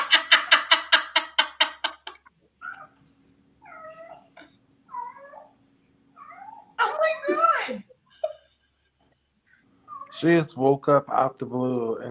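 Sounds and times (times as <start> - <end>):
faint steady hum: 0.0 - 12.0
cat meowing and chirping: 2.6 - 3.0, 3.6 - 6.8, 9.8 - 10.3
speech: 10.2 - 12.0.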